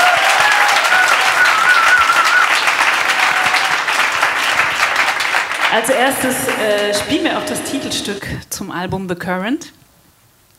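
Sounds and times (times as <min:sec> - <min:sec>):
audience applauding: 0:00.0 - 0:08.1
wavering whistle: 0:00.9 - 0:02.8
speech: 0:05.7 - 0:09.8.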